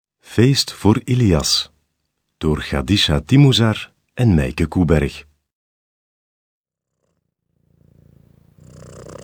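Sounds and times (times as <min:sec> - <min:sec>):
speech: 0:00.4 - 0:01.7, 0:02.4 - 0:05.3
cat purring: 0:06.9 - 0:09.2.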